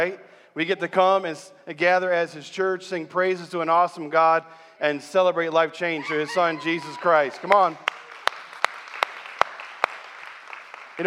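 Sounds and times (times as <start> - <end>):
speech: 0.0 - 8.0
crowd applauding: 6.8 - 11.0
sharp evenly spaced claps: 7.4 - 11.0.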